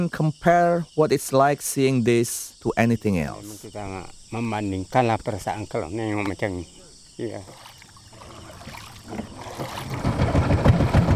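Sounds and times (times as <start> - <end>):
speech: 0.0 - 7.7
water rushing and splashing: 3.8 - 11.1
wooden outboard motorboat engine droning on canal: 7.4 - 11.1.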